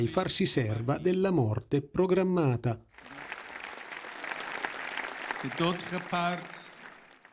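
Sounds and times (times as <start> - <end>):
speech: 0.0 - 3.3, 5.4 - 6.6
audience applause with many hands clapping: 2.9 - 7.3
brief voiced calls or cheers: 3.0 - 7.3.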